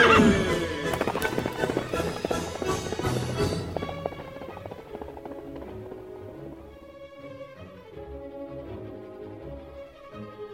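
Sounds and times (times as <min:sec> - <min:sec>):
horse whinnying: 0:00.0 - 0:06.0
galloping horse hoofbeats: 0:00.0 - 0:10.0.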